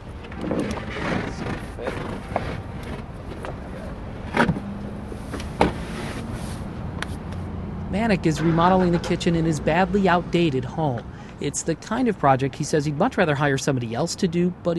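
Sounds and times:
low rumble of passing vehicles in a store parking lot: 0:00.0 - 0:14.7
sharp knocks and scrapes of men cutting drywall with a knife: 0:00.2 - 0:03.6, 0:04.2 - 0:07.4, 0:08.2 - 0:09.5
speech: 0:08.0 - 0:14.7.

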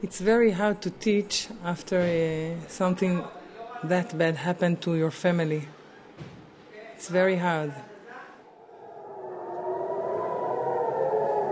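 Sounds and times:
speech: 0:00.0 - 0:05.8, 0:07.0 - 0:07.9
air raid siren in Israel wailing in a steady sustained tone: 0:08.5 - 0:11.5.

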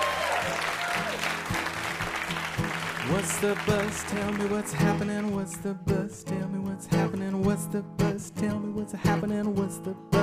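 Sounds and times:
audience applause: 0:00.0 - 0:05.3
speech: 0:03.1 - 0:10.2.

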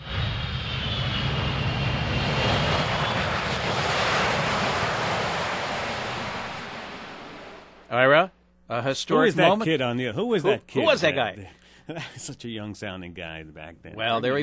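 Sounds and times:
Concorde supersonic airliner landing: 0:00.0 - 0:07.8
speech: 0:08.9 - 0:14.4.

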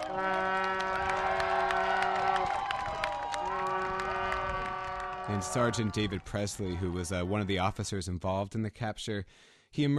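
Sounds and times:
long steady horn blasts at several pitches: 0:00.0 - 0:06.1
crowd celebrating in the street cheering and clapping: 0:00.0 - 0:07.7
speech: 0:00.2 - 0:00.4, 0:05.3 - 0:09.9.

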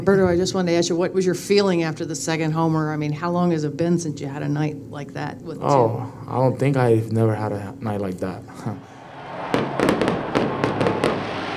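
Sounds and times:
speech: 0:00.0 - 0:08.9
fireworks display after baseball game popping and banging: 0:09.5 - 0:11.5.

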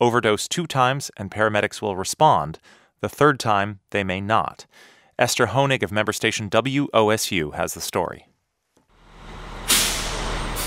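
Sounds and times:
speech: 0:00.0 - 0:08.3
fire truck engine pulling into a fire station: 0:08.9 - 0:10.6
fire truck air-brake hiss: 0:09.1 - 0:10.6.

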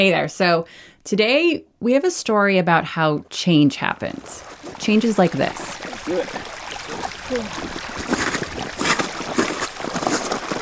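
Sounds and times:
speech: 0:00.0 - 0:08.1
meltwater rushing across an ice sheet: 0:04.0 - 0:10.5.

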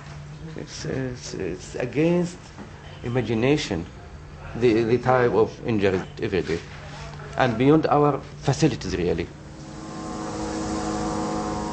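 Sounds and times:
speech: 0:00.6 - 0:06.8, 0:07.4 - 0:09.4
unmanned Israeli drone hovering above refugee camp alleyways: 0:09.4 - 0:11.7.

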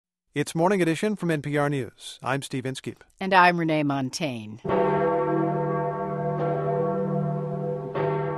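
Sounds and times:
speech: 0:00.4 - 0:05.0
large church bell tolling: 0:04.6 - 0:08.3.

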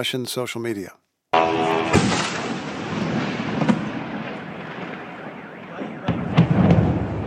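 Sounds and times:
speech: 0:00.0 - 0:02.2
outdoor noise: 0:00.0 - 0:07.2
droning buzz: 0:01.4 - 0:02.4
drone strike explosion blasts: 0:01.4 - 0:07.2.

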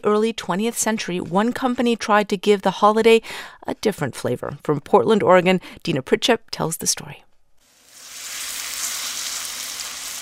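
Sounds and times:
speech: 0:00.0 - 0:07.3
latke batter sizzling in a hot cast iron skillet: 0:07.6 - 0:10.1.

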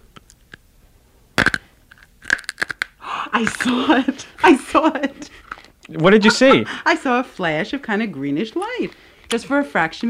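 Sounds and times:
hard candy crunched between teeth in the dark: 0:01.4 - 0:03.8
speech: 0:03.4 - 0:10.0.

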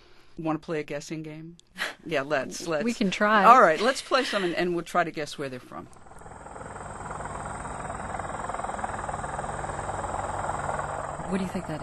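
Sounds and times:
speech: 0:00.4 - 0:06.0, 0:11.3 - 0:11.8
Apache helicopter engine and rotor in Clarksville Tennessee: 0:05.9 - 0:11.8.

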